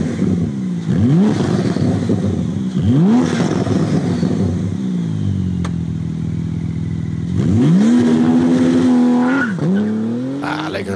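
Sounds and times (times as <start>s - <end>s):
Porsche 911 R sports car accelerating hard through gear changes: 0.0s - 10.9s
Porsche sports car tires squealing: 8.9s - 10.2s
person murmuring: 10.4s - 10.9s.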